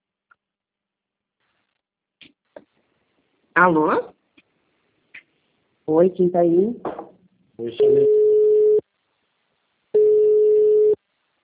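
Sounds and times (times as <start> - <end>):
speech: 3.6 - 4.2, 5.9 - 7.0, 7.6 - 8.2
telephone busy signal after a dropped call: 7.8 - 8.8, 10.0 - 11.0.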